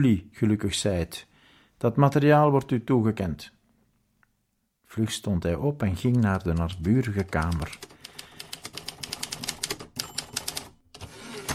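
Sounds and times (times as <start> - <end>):
speech: 0.0 - 3.6, 4.9 - 7.9
person typing a document on a typewriter in the adjoining room: 5.9 - 11.5.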